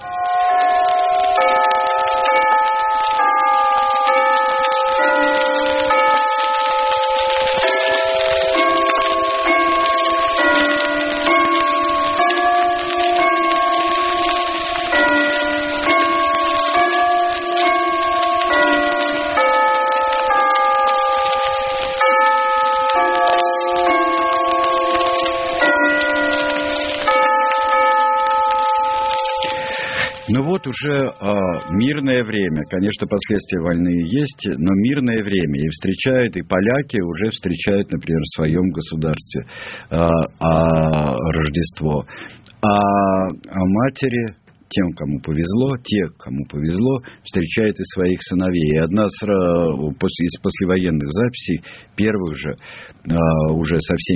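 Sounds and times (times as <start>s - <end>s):
Westminster Abbey church bells pealing: 0.0s - 34.4s
speech: 30.8s - 54.1s.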